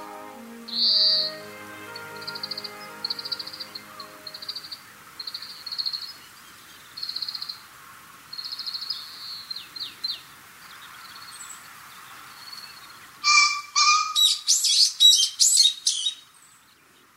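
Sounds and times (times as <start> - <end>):
soft songbird chirps: 0.0 - 7.6, 8.3 - 17.1
green pheasant loud harsh raspy calls: 13.2 - 14.5.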